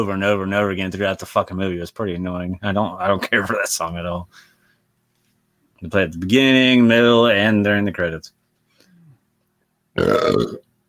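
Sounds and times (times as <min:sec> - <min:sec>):
speech: 0:00.0 - 0:04.5, 0:05.8 - 0:08.4, 0:10.0 - 0:10.6
loud deep burp from an adult: 0:10.0 - 0:10.7.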